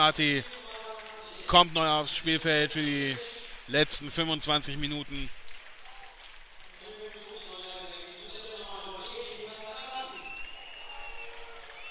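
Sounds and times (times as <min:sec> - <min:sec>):
speech: 0:00.0 - 0:00.6, 0:01.5 - 0:05.4
stadium crowd at a football match whistling at a substitute: 0:07.3 - 0:11.8.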